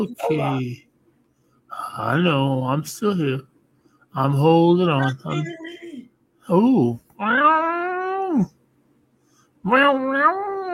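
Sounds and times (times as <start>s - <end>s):
speech: 0.0s - 0.8s, 2.0s - 3.5s, 4.1s - 5.6s, 6.5s - 7.6s, 8.4s - 8.6s, 9.6s - 10.7s
human voice imitating a cat's meow: 7.2s - 8.5s, 9.7s - 10.7s.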